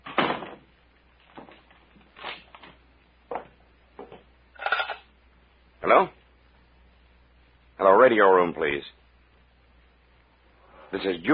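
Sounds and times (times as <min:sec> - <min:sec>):
cabin door shutting with a firm thud: 0:00.0 - 0:00.7
speech: 0:05.9 - 0:06.2, 0:07.8 - 0:09.0, 0:10.9 - 0:11.3.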